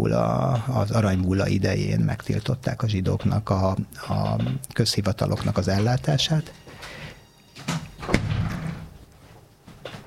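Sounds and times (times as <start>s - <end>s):
speech: 0.0s - 7.0s
door slamming: 7.6s - 9.0s.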